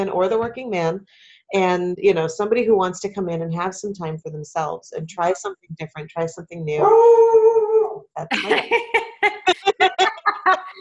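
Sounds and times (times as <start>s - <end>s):
speech: 0.0s - 7.5s, 8.2s - 10.7s
dog howling: 6.8s - 8.0s
laughter: 8.3s - 10.7s.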